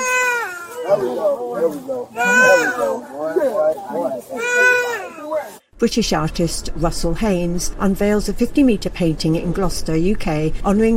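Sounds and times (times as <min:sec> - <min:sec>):
infant crying after resuming breathing: 0:00.0 - 0:01.2, 0:02.1 - 0:03.0, 0:04.3 - 0:05.5
speech: 0:00.9 - 0:10.9.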